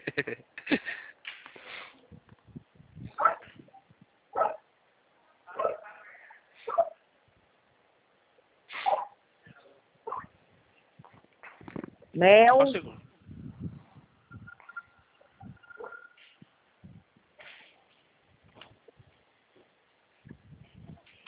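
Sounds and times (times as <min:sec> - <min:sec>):
speech: 0:00.2 - 0:00.5, 0:12.2 - 0:13.0
small dog barking and yipping: 0:03.2 - 0:03.5, 0:04.4 - 0:04.6, 0:05.5 - 0:05.9, 0:06.6 - 0:07.0, 0:08.8 - 0:09.2, 0:10.0 - 0:10.4, 0:15.4 - 0:16.1.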